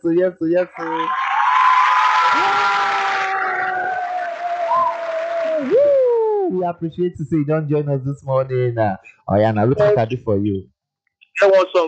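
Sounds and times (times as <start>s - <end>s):
speech: 0.0s - 1.2s, 6.5s - 10.7s, 11.4s - 11.8s
crowd applause for a first-time caller: 0.8s - 5.9s
rising whistle-like sweep: 3.8s - 6.2s.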